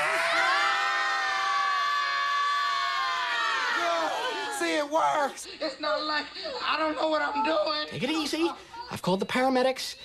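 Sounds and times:
several voices screaming together: 0.0 - 4.9
speech: 4.8 - 10.0.

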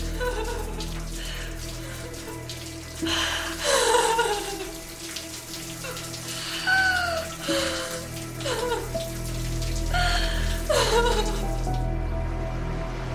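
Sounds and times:
shower water running with hissing splashing spray: 0.0 - 12.0
person sobbing strainedly: 3.0 - 4.8, 5.9 - 9.0, 9.9 - 11.8.

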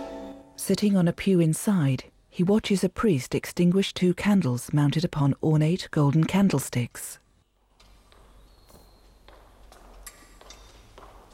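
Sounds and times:
speech: 0.7 - 7.2
footsteps clicking across a hard floor inside a church: 7.8 - 11.3.

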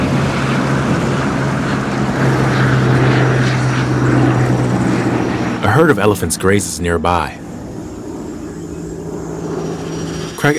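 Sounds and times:
propeller plane engine droning while landing on a bush runway in Northern Kenya: 0.0 - 10.5
speech: 5.8 - 7.4.

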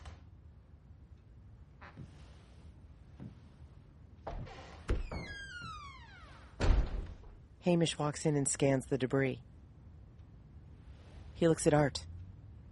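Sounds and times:
front door being opened at night: 4.2 - 7.4
speech: 7.6 - 9.5, 11.4 - 12.1.

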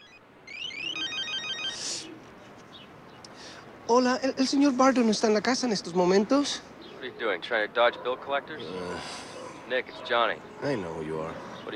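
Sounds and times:
mobile phone ringing with a bright electronic ringtone on a balcony: 0.0 - 2.0
speech: 3.9 - 11.7.

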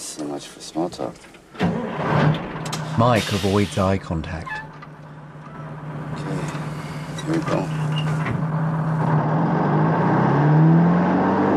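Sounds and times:
speech: 0.2 - 4.6, 7.3 - 7.8
heavy truck rig engine pulling away and accelerating: 1.6 - 11.5.

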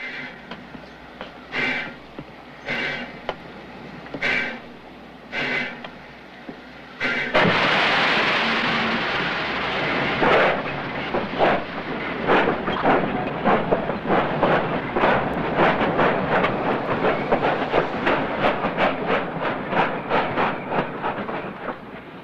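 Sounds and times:
steam locomotive chuffing approaching station: 0.0 - 22.2.

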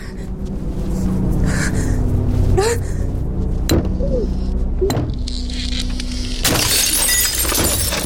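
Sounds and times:
low rumbling background: 0.0 - 8.0
breaking glass showering down: 6.4 - 8.0
glass door shattering: 6.4 - 8.0.

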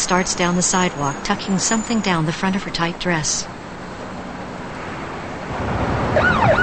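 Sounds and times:
speech: 0.0 - 3.6
police car siren wailing on a busy street: 0.0 - 6.6
steady rushing street noise: 0.0 - 6.6.

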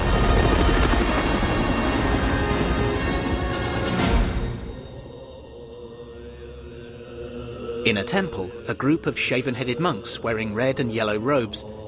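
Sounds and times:
helicopter flying over mountains: 0.0 - 4.2
speech: 7.9 - 11.8.

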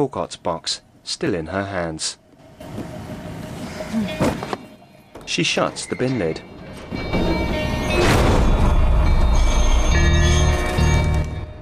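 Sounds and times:
speech: 0.0 - 2.9, 5.3 - 7.4
tram rumbling past through city streets of New Orleans USA: 2.4 - 11.3
metallic rail squeal and rattling: 5.5 - 11.1
brief clanging bell-like ring: 5.8 - 11.4.

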